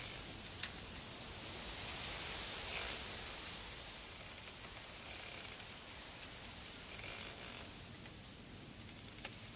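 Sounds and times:
bamboo stalks swaying and rustling in the wind: 0.0 - 9.5.

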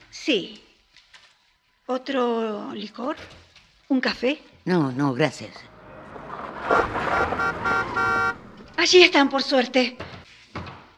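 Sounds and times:
speech: 0.2 - 0.7, 1.9 - 5.7, 6.6 - 10.1
car horn honking: 5.7 - 10.0.

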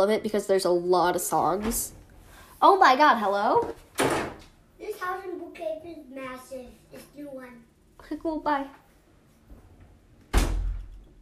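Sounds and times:
speech: 0.0 - 2.0, 2.6 - 4.3, 5.0 - 8.8
door opening with a thump: 3.9 - 4.4, 10.2 - 11.2.

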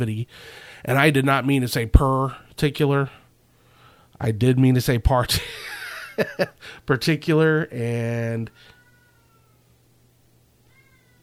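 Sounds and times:
speech: 0.0 - 3.2, 4.2 - 8.7
cat yelling out in a hallway: 10.6 - 11.2.

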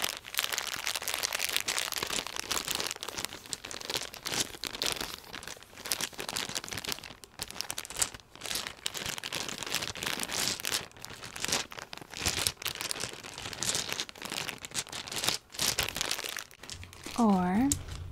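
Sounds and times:
dice shaken inside a bag: 0.0 - 18.0
crinkly rustling of the bag: 15.7 - 18.0.

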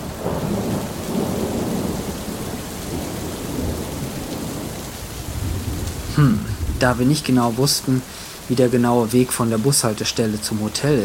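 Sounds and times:
deep rolling rumbles of thunder: 0.0 - 8.9
steady heavy rain hissing in a thunderstorm: 0.0 - 11.0
speech: 6.2 - 11.0.

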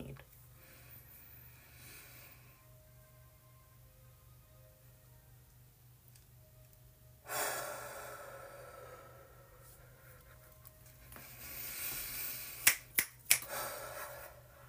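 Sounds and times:
slow deep breath drawn in and let out: 0.6 - 2.7, 7.2 - 10.1, 11.2 - 12.7, 13.4 - 14.6
quick sharp snaps: 11.8 - 13.5.

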